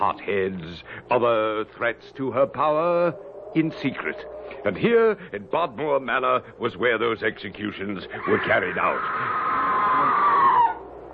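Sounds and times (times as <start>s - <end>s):
speech: 0.0s - 9.6s
faint low hum: 0.0s - 11.1s
person screaming at an old manor house: 8.1s - 10.8s.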